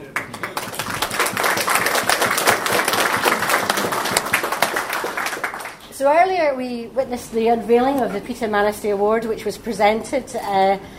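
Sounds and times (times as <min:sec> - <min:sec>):
crowd of railway preservation society members applauding: 0:00.0 - 0:05.9
speech: 0:06.0 - 0:10.9.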